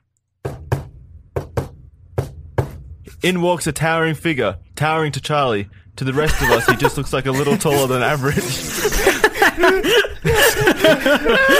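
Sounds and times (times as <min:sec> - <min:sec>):
knocking on a door: 0:00.4 - 0:03.0
speech: 0:03.1 - 0:11.5
laughter: 0:06.1 - 0:11.5.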